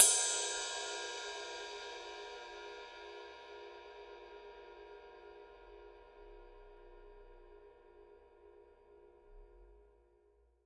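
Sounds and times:
22-inch power ride cymbal: 0.0 - 7.6.

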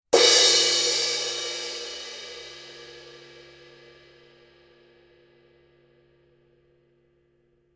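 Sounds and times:
Paiste 900 series 19 inch crash cymbal struck on the edge: 0.2 - 4.2.

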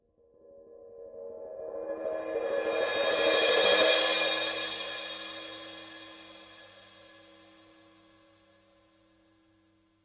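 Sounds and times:
16 inch Paiste 2002 medium cymbal roll: 1.9 - 8.3.

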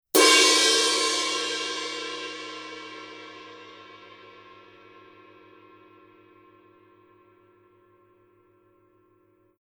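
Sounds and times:
heavy purple ride cymbal struck on the edge: 0.2 - 6.7.

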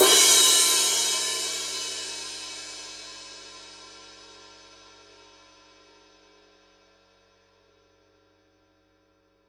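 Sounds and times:
Paiste Rude 19-inch crash-ride cymbal struck on edge: 0.0 - 4.0.

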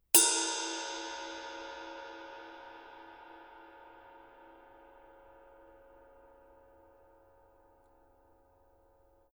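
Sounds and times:
22-inch black heavy ride cymbal body hits: 0.2 - 7.2.

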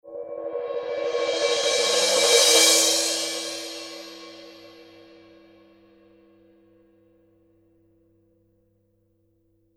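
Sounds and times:
16-inch purple heavy crash cymbal roll: 0.1 - 5.7.

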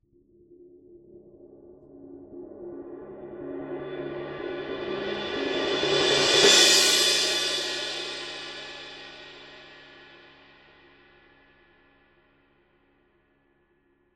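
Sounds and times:
20-inch extra thin cymbal roll: 4.0 - 10.4.

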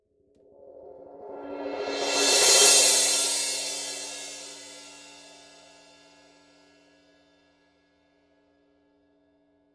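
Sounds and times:
18-inch heavy crash cymbal roll: 1.2 - 5.7.

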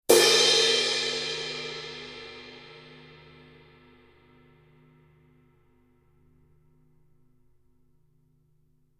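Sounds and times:
900 series 19 inch purple crash cymbal edge: 0.1 - 4.6.

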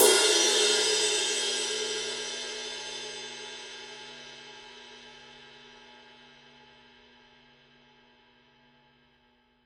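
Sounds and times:
20-inch heavy ride cymbal edge, Paiste 2002: 0.0 - 3.4.

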